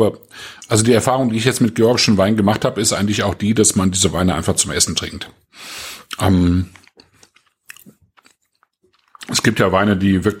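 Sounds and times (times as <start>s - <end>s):
speech: 0.0s - 6.8s, 9.3s - 10.3s
crunchy chewing of salted almonds: 6.1s - 9.6s.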